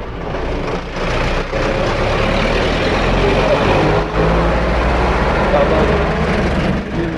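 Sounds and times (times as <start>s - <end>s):
heavy car and truck traffic: 0.0s - 7.1s
indistinct voices: 1.6s - 7.1s.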